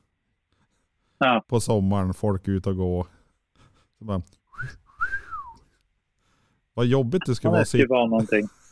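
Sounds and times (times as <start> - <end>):
speech: 1.2 - 3.2, 4.0 - 4.8, 6.8 - 8.6
person whistling two short tonal phrases: 4.5 - 5.7
laughter: 8.2 - 8.6.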